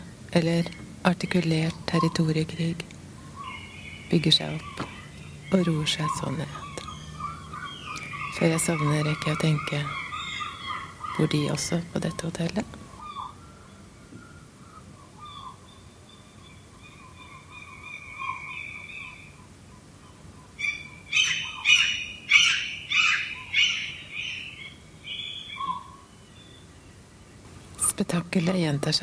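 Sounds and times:
low hum: 0.0 - 29.0
speech: 0.4 - 2.9, 4.1 - 4.9, 5.5 - 6.7, 8.4 - 10.0, 11.2 - 12.8, 28.4 - 29.0
gulls squawking and calling at night: 3.2 - 26.1.

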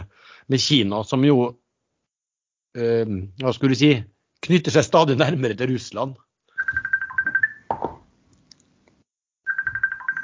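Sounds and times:
speech: 0.5 - 1.6, 2.8 - 7.4
telephone ringing: 6.6 - 7.9, 9.5 - 10.2.

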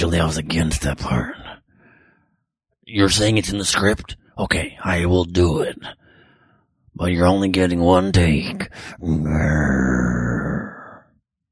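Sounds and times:
speech: 0.0 - 1.4, 2.9 - 6.0, 7.0 - 10.5
man growling imitating a tiger: 9.0 - 11.1.

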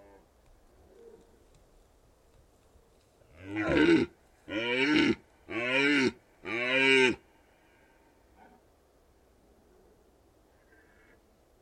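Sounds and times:
rutting red deer stag bellowing in the Carpathian Mountains, Romania: 3.4 - 7.2.

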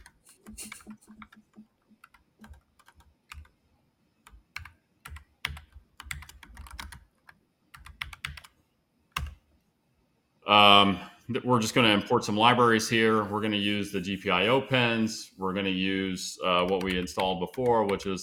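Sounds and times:
typing on a computer keyboard: 0.0 - 3.6, 4.2 - 9.4, 16.6 - 18.2
speech: 10.5 - 18.2.

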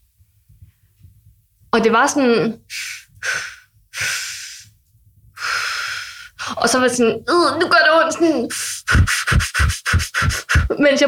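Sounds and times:
speech: 1.8 - 3.4, 6.6 - 11.0
labor breathing through contractions: 2.7 - 4.7, 5.4 - 6.7, 8.2 - 10.8.

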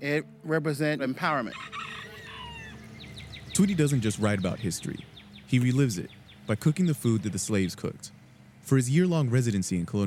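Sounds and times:
speech: 0.0 - 1.9, 3.6 - 10.0
rooster's drawn-out crow: 1.5 - 3.4
chickens clucking: 1.6 - 8.0.

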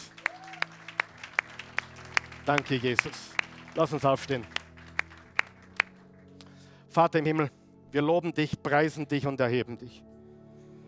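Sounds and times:
congregation clapping in a steady rhythm: 0.0 - 6.6
speech: 2.5 - 4.6, 6.9 - 10.1.

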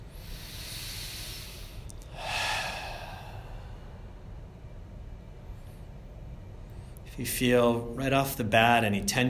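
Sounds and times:
deep breath in through nose and out through mouth: 0.0 - 4.6
steady low hum: 0.0 - 9.2
speech: 7.2 - 9.2.

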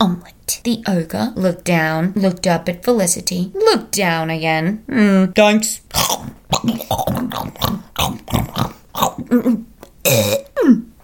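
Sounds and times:
speech: 0.0 - 10.9
loud drawn-out burp: 5.9 - 10.8
gulping and grunting mouth noises: 5.9 - 10.9.

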